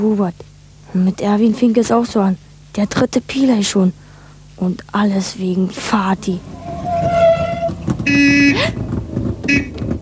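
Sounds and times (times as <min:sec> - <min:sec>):
speech: 0:00.0 - 0:04.0, 0:04.6 - 0:07.3, 0:08.0 - 0:08.8, 0:09.5 - 0:09.9
running car engine humming: 0:03.5 - 0:10.0
car horn honking: 0:06.5 - 0:08.8, 0:09.5 - 0:09.8.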